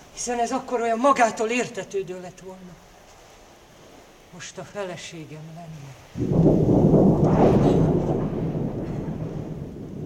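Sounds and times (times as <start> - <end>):
faint hiss of rain or wind: 0.0 - 10.0
speech: 0.2 - 2.9, 4.3 - 7.8
deep sustained rumble of thunder: 6.1 - 10.0.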